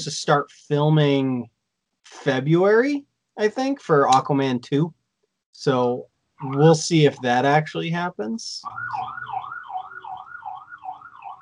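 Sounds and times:
speech: 0:00.0 - 0:05.0, 0:05.6 - 0:09.5
many sirens wailing outside: 0:08.6 - 0:11.4.

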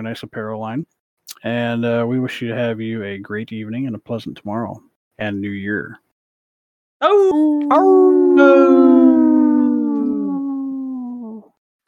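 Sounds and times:
speech: 0:00.0 - 0:06.0, 0:07.0 - 0:09.1
wolf howling: 0:07.0 - 0:11.5.

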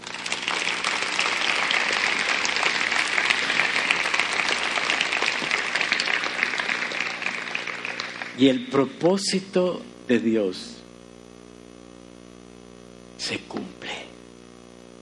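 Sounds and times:
audience applauding: 0:00.0 - 0:09.2
speech: 0:08.4 - 0:10.8, 0:13.3 - 0:14.0.

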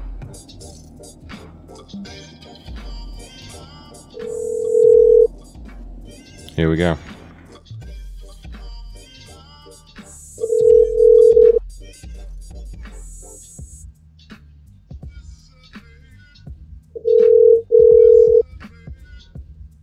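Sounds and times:
speech: 0:01.9 - 0:04.4, 0:06.6 - 0:07.1
Indian telephone line busy tone on an outgoing call: 0:04.3 - 0:05.3, 0:10.4 - 0:11.6, 0:17.0 - 0:18.4.

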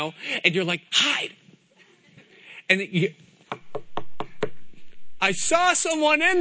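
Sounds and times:
speech: 0:00.0 - 0:01.4, 0:02.7 - 0:03.3, 0:05.2 - 0:06.3
firm knocking on a door: 0:03.5 - 0:04.7.

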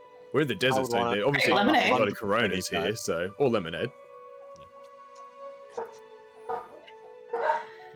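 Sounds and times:
speech: 0:00.3 - 0:04.0
dog barking: 0:05.7 - 0:07.8.

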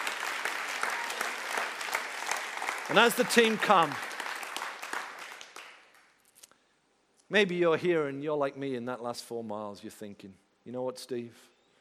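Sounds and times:
audience applause: 0:00.0 - 0:06.1
speech: 0:02.9 - 0:04.1, 0:07.3 - 0:11.5.

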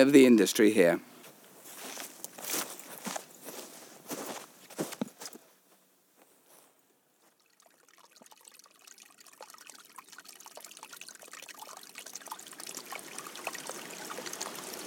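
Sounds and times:
speech: 0:00.0 - 0:01.1
small stream of water flowing out of a mine adit: 0:00.0 - 0:14.8
crunching footsteps: 0:00.2 - 0:06.8.

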